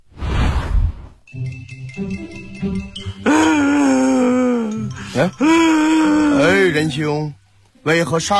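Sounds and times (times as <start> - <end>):
speech: 1.4 - 3.0, 5.2 - 5.8, 6.8 - 8.3
person imitating a loud wailing cry: 3.2 - 6.8.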